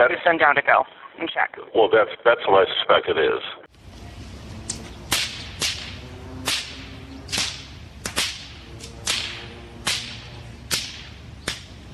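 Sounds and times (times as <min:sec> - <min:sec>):
speech: 0:00.0 - 0:03.7
bullwhips cracking in a downtown park on the Truckee River: 0:04.7 - 0:11.9.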